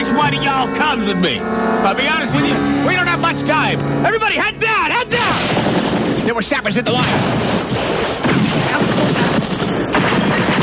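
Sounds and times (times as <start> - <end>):
speech: 0.2 - 5.7, 6.3 - 9.7
rifle gunfire barrage in a combat scene: 5.2 - 10.6.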